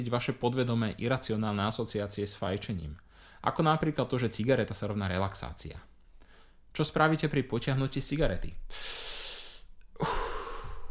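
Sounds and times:
speech: 0.0 - 5.9, 6.7 - 9.1
slow breathing in and out as in a calming breath exercise: 8.7 - 10.8.

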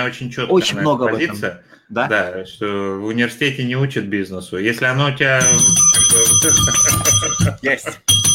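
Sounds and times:
speech: 0.0 - 8.3
laughter: 0.4 - 2.3, 6.6 - 8.1
small bell ringing rapidly: 5.4 - 8.3.

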